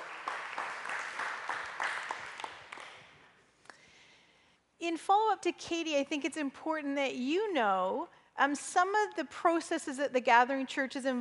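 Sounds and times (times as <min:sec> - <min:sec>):
small group applauding: 0:00.0 - 0:03.8
speech: 0:05.0 - 0:11.1.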